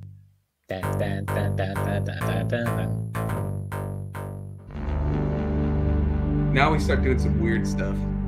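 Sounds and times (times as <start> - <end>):
speech: 0.7 - 3.5, 6.6 - 8.1
harsh FM synth tone through distortion effect: 0.7 - 7.1.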